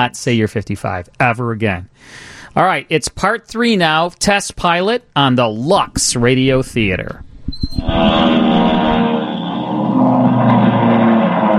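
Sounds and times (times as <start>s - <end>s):
speech: 0.0s - 8.7s
race cars speeding down a straightaway, radio drama sound effect: 8.0s - 11.5s.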